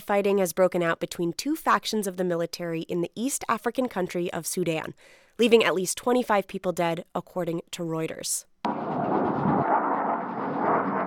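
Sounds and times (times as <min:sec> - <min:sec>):
speech: 0:00.1 - 0:08.9
military jets roaring over Khartoum Sudan during fighting: 0:08.7 - 0:11.0.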